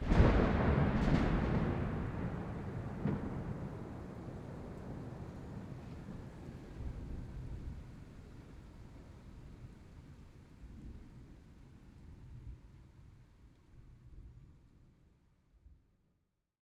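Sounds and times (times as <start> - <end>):
medium thunder clap: 0.0 - 7.7.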